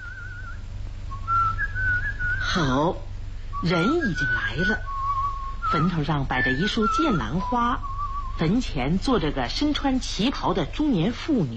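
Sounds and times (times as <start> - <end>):
person whistling a light breezy tune: 0.0 - 2.6, 3.6 - 8.5
low steady hum: 0.0 - 11.5
speech: 2.6 - 4.9, 5.7 - 11.5.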